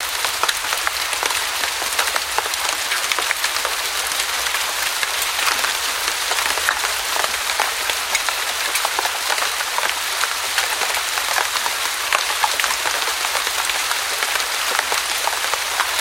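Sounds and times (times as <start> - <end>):
rain: 0.0 - 15.9.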